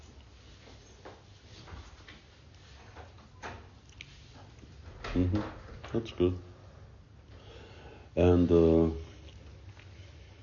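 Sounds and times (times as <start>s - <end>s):
door being opened with clunks and soft rattles: 4.8s - 6.2s
speech: 5.2s - 6.5s, 8.2s - 9.0s.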